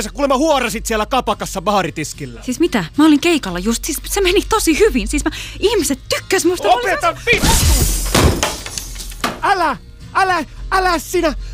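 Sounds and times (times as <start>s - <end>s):
speech: 0.0s - 8.5s, 9.4s - 11.5s
glass table smashing: 7.4s - 9.5s.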